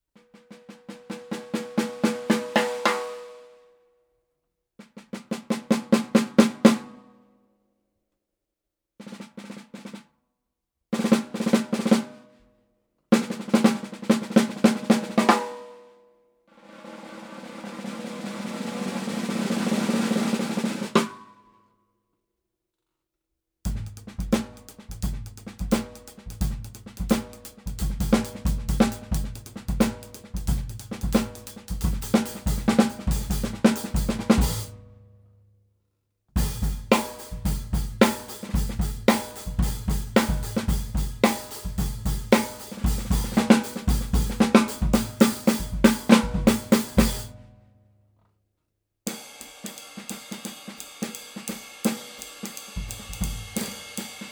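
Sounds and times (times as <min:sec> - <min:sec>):
Gretsch Drop G snare drum: 0:00.3 - 0:03.4, 0:05.0 - 0:07.1, 0:11.0 - 0:12.2, 0:13.2 - 0:15.7, 0:16.7 - 0:21.3, 0:23.7 - 0:34.9, 0:36.4 - 0:47.4, 0:49.1 - 0:54.3.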